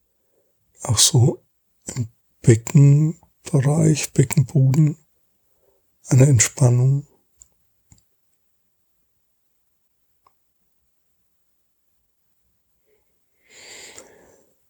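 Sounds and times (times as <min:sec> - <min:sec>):
speech: 0:00.8 - 0:05.0, 0:06.1 - 0:07.1
breath with faint nasal whistle during a body relaxation exercise: 0:13.4 - 0:14.6.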